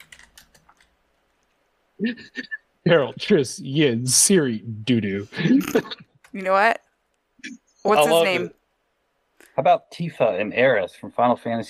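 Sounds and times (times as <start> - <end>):
typing on a computer keyboard: 0.0 - 1.6
speech: 2.0 - 6.8, 7.4 - 8.6, 9.6 - 11.6.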